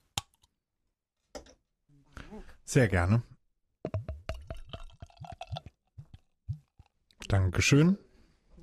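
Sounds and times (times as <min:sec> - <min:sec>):
speech: 0:02.3 - 0:03.3, 0:07.3 - 0:08.0
Berliner Weisse beer glugging out of a bottle into a glass: 0:03.9 - 0:06.8.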